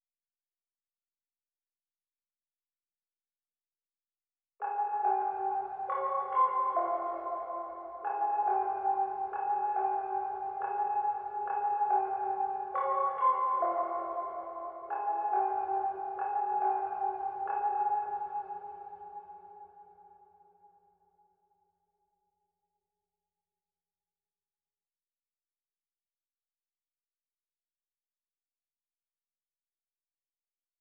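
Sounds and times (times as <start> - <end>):
music box melody loop in F minor at 140 BPM: 4.9 - 19.6.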